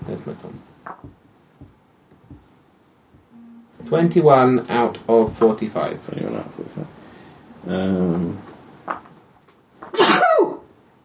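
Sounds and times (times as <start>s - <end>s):
speech: 0.2s - 1.1s, 3.9s - 7.0s, 7.6s - 8.5s
small stifled sneeze: 9.9s - 10.6s.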